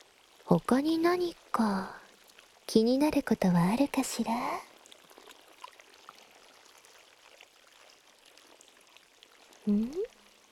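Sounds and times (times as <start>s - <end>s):
fresh spring water welling up from a brackish lake bottom: 0.0s - 10.4s
speech: 0.5s - 2.0s, 2.7s - 4.7s, 9.6s - 10.2s
person murmuring: 9.7s - 10.1s.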